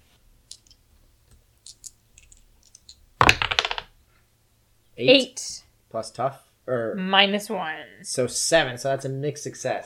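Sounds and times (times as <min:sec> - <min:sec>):
two six-sided dice clattering across a hard surface: 0:01.7 - 0:03.9
speech: 0:05.0 - 0:09.8.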